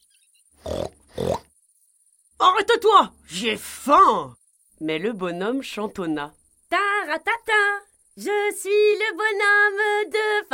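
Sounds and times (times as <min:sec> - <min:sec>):
pig grunting: 0:00.6 - 0:01.5
speech: 0:02.4 - 0:10.5.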